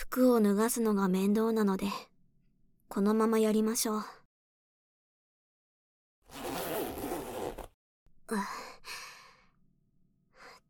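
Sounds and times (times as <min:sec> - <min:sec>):
speech: 0:00.2 - 0:02.1, 0:02.9 - 0:04.2, 0:08.3 - 0:09.0
zipper being pulled down: 0:06.3 - 0:07.8.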